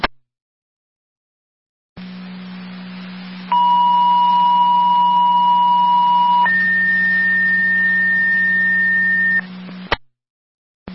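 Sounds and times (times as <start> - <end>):
low static hum: 2.0 - 10.0
two-tone fire dispatch pager alert over a radio channel: 3.5 - 9.4.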